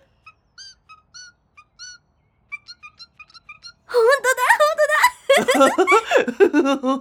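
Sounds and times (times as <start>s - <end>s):
bird whistling suki suki calls: 0.0s - 3.8s
laughter: 3.9s - 6.9s
speech: 5.4s - 6.9s.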